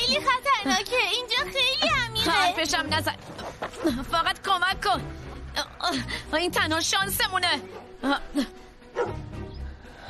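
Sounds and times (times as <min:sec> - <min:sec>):
speech: 0:00.1 - 0:01.8, 0:02.7 - 0:09.2
dog barking and whimpering in short yelps: 0:08.9 - 0:09.3.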